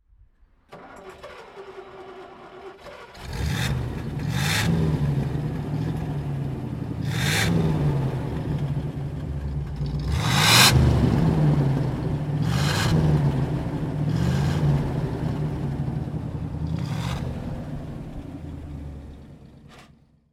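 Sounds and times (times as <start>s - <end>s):
Studebaker Avanti supercharged car engine: 0.8s - 20.1s.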